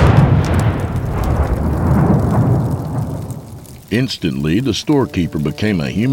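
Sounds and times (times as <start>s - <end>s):
deep loud explosive boom rumbling: 0.0s - 3.9s
speech: 3.9s - 6.1s.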